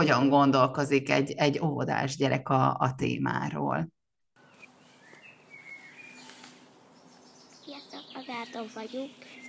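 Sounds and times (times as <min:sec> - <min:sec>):
speech: 0:00.0 - 0:04.0, 0:08.3 - 0:09.4
birds chirping outdoors: 0:04.4 - 0:09.4
steady outdoor hiss: 0:04.4 - 0:09.4.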